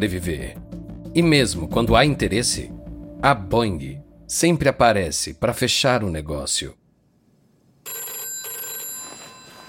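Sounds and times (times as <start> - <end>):
speech: 0.0 - 6.8
telephone bell ringing in an apartment in Paris: 7.8 - 9.6.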